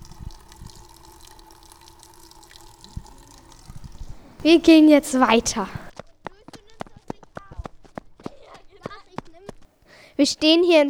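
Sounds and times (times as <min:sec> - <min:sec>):
water trickling and splashing from a small fountain: 0:00.0 - 0:05.9
speech: 0:04.4 - 0:05.8, 0:10.2 - 0:10.8.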